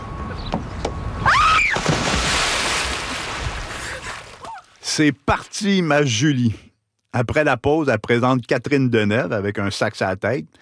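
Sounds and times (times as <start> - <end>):
splash of someone plunging into water: 1.5 - 4.7
churning rushing water: 1.8 - 4.5
speech: 5.0 - 10.6.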